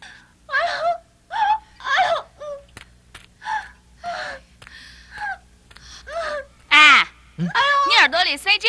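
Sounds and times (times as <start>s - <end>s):
woman in childbirth crying out in pain: 0.5s - 2.6s, 6.1s - 8.1s
speech: 8.3s - 8.6s.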